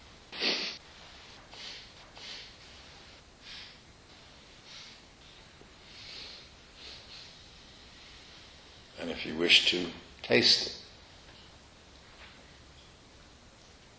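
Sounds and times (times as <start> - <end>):
person sniffing a stone: 0.3 - 3.8, 5.9 - 7.7
speech: 9.2 - 10.8.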